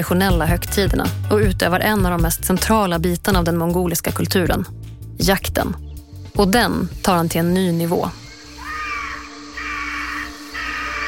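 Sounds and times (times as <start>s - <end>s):
speech: 0.0s - 5.8s, 6.4s - 8.2s
hunting eagle screaming shrilly and harshly while chasing a crane: 8.2s - 11.0s.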